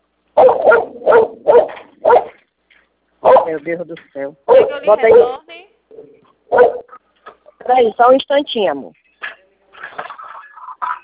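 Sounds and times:
dog barking: 0.4 - 2.4, 3.2 - 3.6, 4.5 - 5.4, 6.5 - 7.0
speech: 3.5 - 5.5, 7.7 - 9.0.

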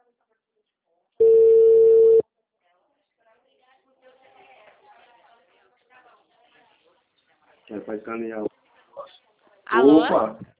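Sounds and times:
telephone ringback tone while placing a call: 1.2 - 2.2
speech: 7.7 - 8.5, 9.8 - 10.5.

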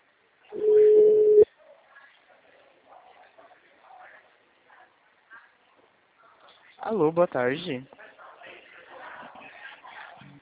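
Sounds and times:
telephone ringback tone for an outgoing call: 0.6 - 1.4
speech: 6.9 - 8.0.

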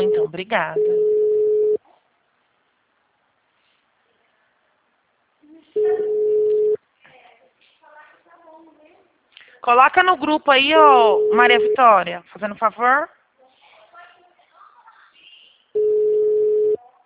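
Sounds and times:
speech: 0.0 - 1.1, 9.6 - 13.2
steady low telephone tone while a call is transferred: 0.0 - 1.8, 5.8 - 6.8, 10.9 - 11.9, 15.8 - 16.8.

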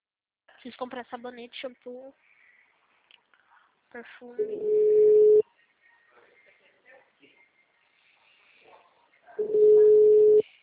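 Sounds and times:
speech: 0.6 - 2.3, 3.9 - 5.0
telephone ringback tones while placing a call: 4.6 - 5.4, 9.4 - 10.4.

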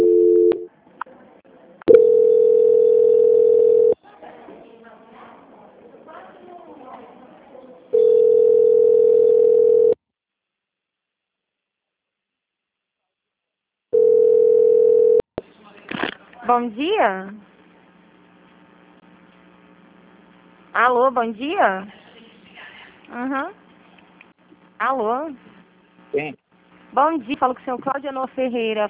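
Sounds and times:
low-pitched telephone line tone during a call transfer: 0.0 - 0.7, 1.9 - 4.0, 7.9 - 10.0, 14.0 - 15.2
speech: 16.6 - 17.4, 20.8 - 22.0, 23.1 - 23.6, 24.8 - 25.5, 26.1 - 28.8.

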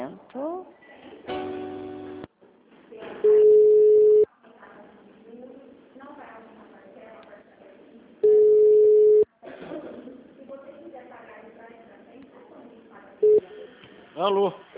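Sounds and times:
flat loud telephone busy tone from a dropped call: 3.3 - 4.3, 8.2 - 9.3, 13.2 - 13.4.

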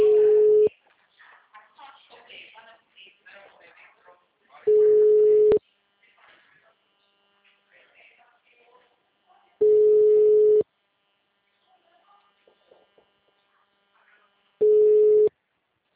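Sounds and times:
telephone busy tone after a dropped call: 0.0 - 0.7, 4.7 - 5.6, 9.6 - 10.6, 14.6 - 15.3.

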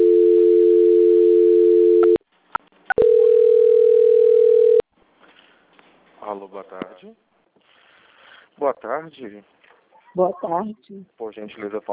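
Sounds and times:
telephone call transfer tone as a call is passed to a quality-control department: 0.0 - 2.2, 2.9 - 4.8
speech: 7.0 - 7.3, 8.6 - 11.9.

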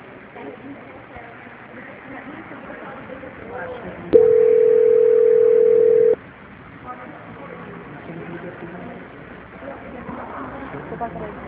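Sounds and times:
low telephone line hiss: 4.2 - 6.2
telephone line beep during a call transfer: 4.2 - 6.2.

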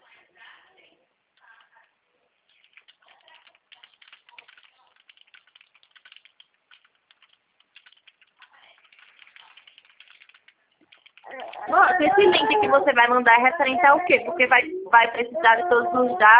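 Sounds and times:
typing on a computer keyboard: 2.5 - 12.5
speech: 11.3 - 16.3.

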